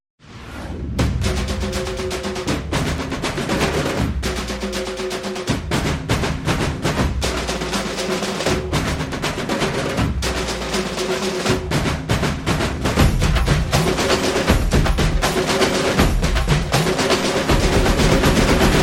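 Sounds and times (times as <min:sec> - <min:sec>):
drum beats: 0:00.9 - 0:18.8.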